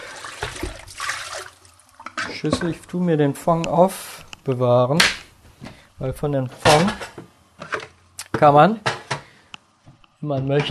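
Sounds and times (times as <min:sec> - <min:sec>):
hot cooking water from boiled leeks pouring out of a pot: 0:00.0 - 0:02.2
speech: 0:02.4 - 0:05.2, 0:06.0 - 0:07.0, 0:08.4 - 0:08.9, 0:10.2 - 0:10.6.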